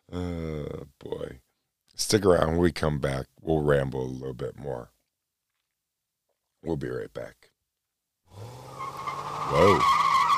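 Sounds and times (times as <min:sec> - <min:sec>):
speech: 0:02.1 - 0:04.9, 0:06.6 - 0:07.5, 0:09.5 - 0:10.0
race car tires skidding and squealing: 0:08.4 - 0:10.3.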